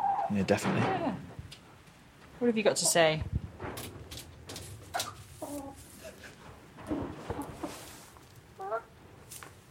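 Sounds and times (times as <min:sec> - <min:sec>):
hens warbling calls: 0:00.0 - 0:00.3, 0:04.9 - 0:06.0, 0:08.6 - 0:08.9
hens clucking and crooning: 0:00.0 - 0:00.4, 0:04.8 - 0:07.9, 0:08.5 - 0:09.0
speech: 0:00.3 - 0:01.3, 0:02.4 - 0:03.9
outdoor rustling: 0:03.5 - 0:09.7.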